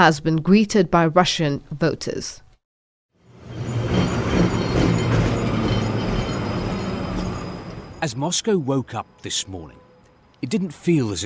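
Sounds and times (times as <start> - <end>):
speech: 0.0 - 2.4, 8.0 - 9.8, 10.4 - 11.2
tram wheels grinding on rails: 3.2 - 8.1
tram trundling along a city street: 3.2 - 10.3.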